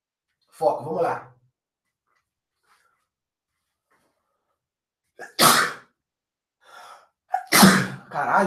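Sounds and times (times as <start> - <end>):
speech: 0.6 - 1.3, 8.2 - 8.4
person sneezing with eyes open: 5.2 - 5.9, 7.3 - 8.1.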